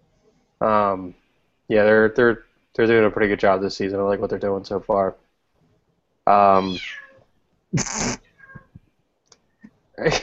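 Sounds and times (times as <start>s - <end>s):
speech: 0.6s - 5.2s, 6.3s - 7.0s, 7.7s - 8.3s, 10.0s - 10.2s
cat meowing: 6.4s - 7.3s, 8.2s - 8.8s
faint clicks: 8.6s - 9.8s.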